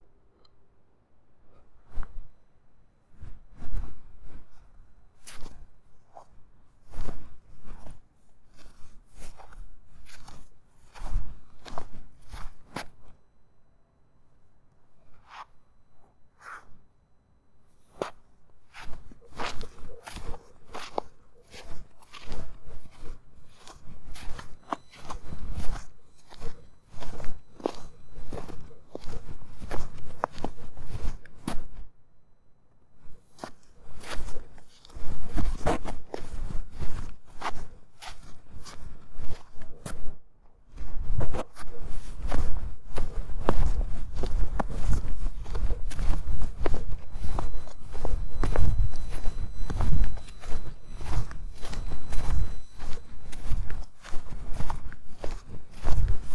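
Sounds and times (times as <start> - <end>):
footsteps in snow outdoors: 3.1 - 13.2, 15.0 - 16.8, 17.7 - 31.9, 33.0 - 56.3.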